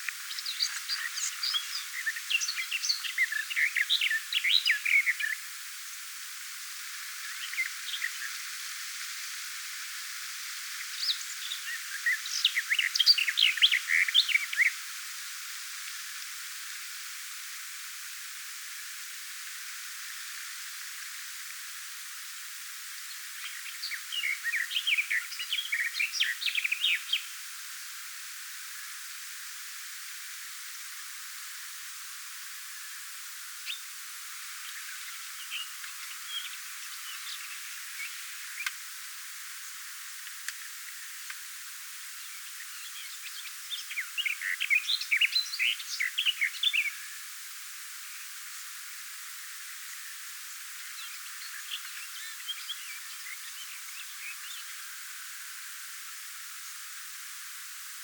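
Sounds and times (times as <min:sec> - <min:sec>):
garden warbler singing in bushes: 0:00.0 - 0:05.5, 0:10.7 - 0:14.8, 0:23.0 - 0:27.4, 0:33.6 - 0:40.0, 0:40.7 - 0:47.3, 0:49.9 - 0:55.0.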